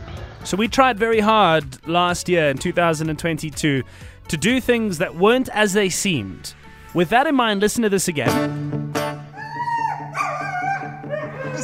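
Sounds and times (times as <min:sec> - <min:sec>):
speech: 0:00.4 - 0:08.8
dog barking and whining: 0:09.3 - 0:11.6.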